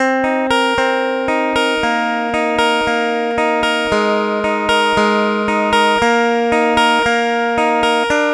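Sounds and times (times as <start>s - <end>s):
pop rock acoustic guitar arpeggio in C major: 0.0s - 8.3s.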